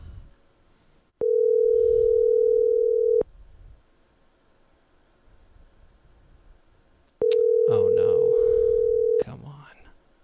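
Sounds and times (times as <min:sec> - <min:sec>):
outgoing phone call ringback tone: 0:01.2 - 0:03.2, 0:07.2 - 0:09.2.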